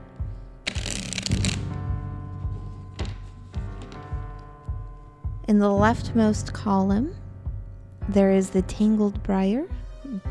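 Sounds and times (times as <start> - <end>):
deck of cards being shuffled: 0.6 - 4.5
speech: 5.5 - 7.2, 8.1 - 10.3.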